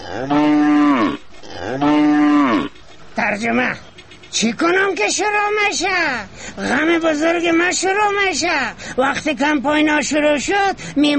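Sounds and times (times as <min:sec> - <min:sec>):
cow mooing: 0:00.0 - 0:02.8
speech: 0:00.1 - 0:00.4, 0:03.3 - 0:11.1.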